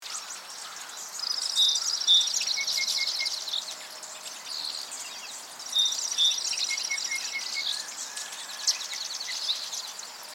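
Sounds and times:
Song sparrow singing: 0.0 - 10.3.

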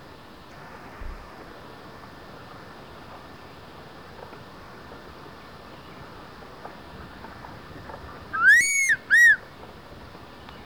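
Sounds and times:
faint background hiss: 0.0 - 10.6
crested serpent eagle ringing whistle call: 8.3 - 9.4.

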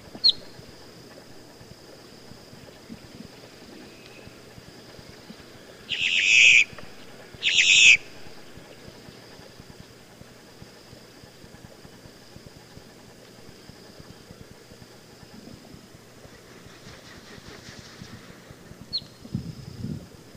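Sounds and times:
faint background hiss: 0.0 - 20.3
boat-tailed grackle harsh rasping calls: 5.6 - 8.8.

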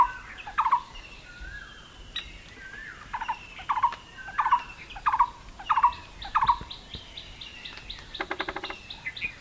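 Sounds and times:
fulvous-breasted woodpecker Dendrocopos macei sharp call notes: 0.0 - 0.9, 3.1 - 6.8, 7.7 - 9.3
birds whistling: 0.0 - 9.3.

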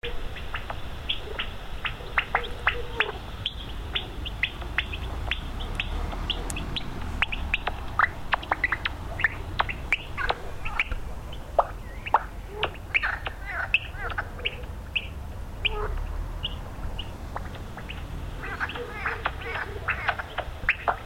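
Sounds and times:
low rumbling hiss: 0.0 - 21.0
Common noctule echolocation through a bat detector: 5.3 - 8.9.

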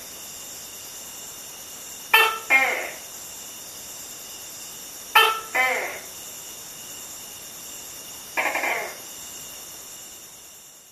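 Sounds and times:
steady faint hiss: 0.0 - 10.9
male Tokay gecko Gekko gecko mating call: 2.2 - 3.0, 5.2 - 6.1, 8.4 - 9.1.

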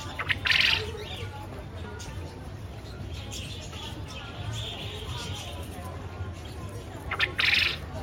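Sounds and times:
Japanese quail giving harsh chirping bursts: 0.2 - 0.9, 7.1 - 7.8.

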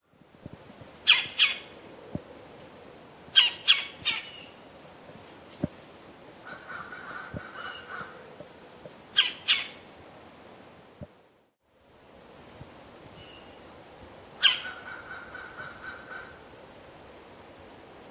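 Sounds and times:
red-bellied woodpecker Melanerpes carolinus uttering rough grating calls: 1.1 - 1.6, 3.3 - 4.5, 6.4 - 8.2, 9.1 - 9.8, 14.4 - 16.3.

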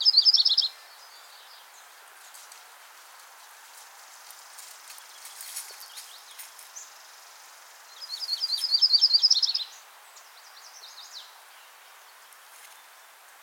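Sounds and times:
Yellow-rumped Warbler Myrtle form singing short high trills: 0.0 - 1.7, 7.9 - 9.8
soft hiss: 0.0 - 13.4.

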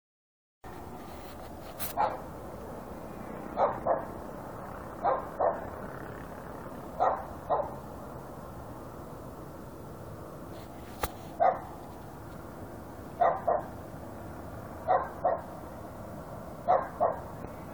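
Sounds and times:
dog barking in Rome: 1.9 - 2.3, 3.5 - 4.1, 5.0 - 5.7, 7.0 - 7.8, 11.4 - 11.7, 13.2 - 13.7, 14.8 - 15.5, 16.7 - 17.4
sharp click: 10.9 - 11.2.

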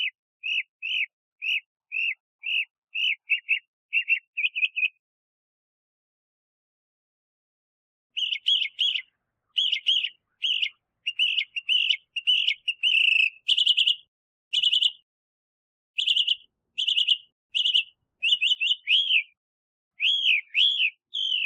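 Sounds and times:
Northern mockingbird Mimus polyglottos singing: 0.0 - 5.0, 8.1 - 15.1, 16.0 - 21.4.

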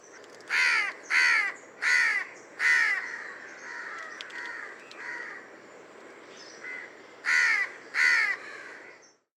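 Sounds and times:
house crow Corvus splendens cawing: 0.5 - 5.4, 6.6 - 8.9.

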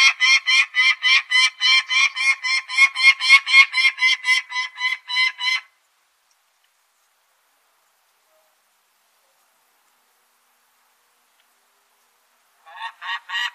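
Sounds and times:
Peregrine falcon calling in harsh raspy kak notes: 0.0 - 5.7, 12.6 - 13.5.

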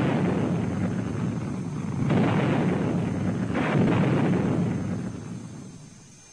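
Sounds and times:
Little John solid-propellant surface-to-surface rocket launch roar: 0.0 - 6.0.

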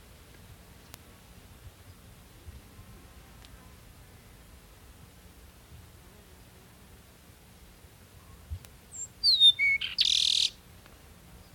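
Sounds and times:
Peruvian meadowlark Sturnella bellicosa singing: 8.9 - 10.6.

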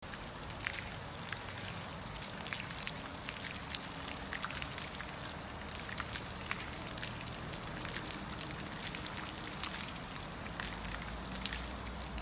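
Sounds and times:
fountain at the Tinguely museum in Basel: 0.0 - 12.1.

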